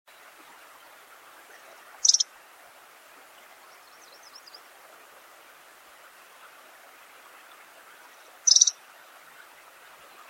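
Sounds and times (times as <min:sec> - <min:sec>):
low background hiss: 0:00.1 - 0:10.2
faint thin wavering pink-rumped rosefinch twitter: 0:01.4 - 0:02.3, 0:03.6 - 0:04.7, 0:07.4 - 0:10.2
pink-rumped rosefinch chattering calls: 0:02.0 - 0:02.2, 0:08.4 - 0:08.8.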